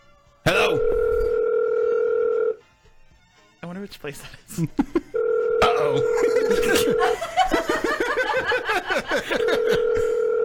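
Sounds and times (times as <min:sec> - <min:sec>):
telephone dial tone: 0:00.9 - 0:02.6, 0:05.2 - 0:05.8, 0:09.4 - 0:10.4
speech: 0:03.9 - 0:05.1, 0:05.8 - 0:07.6
laughter: 0:05.9 - 0:10.2.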